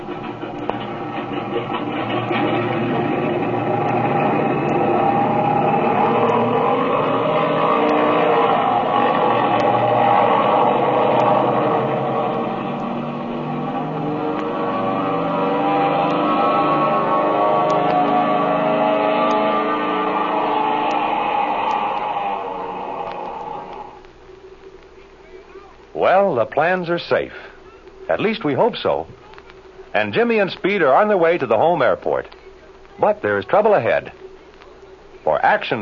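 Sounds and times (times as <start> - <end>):
airplane engine running at full throttle: 0.0 - 24.0
speech: 26.4 - 27.5, 28.2 - 29.2, 30.0 - 32.4, 33.0 - 34.1, 35.5 - 35.8.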